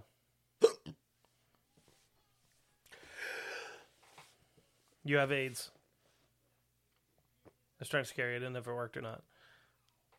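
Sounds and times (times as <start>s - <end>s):
hiccups: 0.6s - 1.0s
speech: 5.0s - 5.8s, 7.8s - 9.3s.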